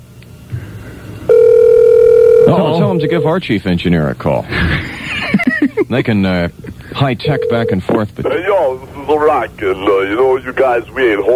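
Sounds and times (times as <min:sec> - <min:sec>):
loud steady electronic telephone ringing tone: 0:01.3 - 0:03.3, 0:07.2 - 0:07.9
speech: 0:02.5 - 0:11.3
laughter: 0:04.5 - 0:06.1.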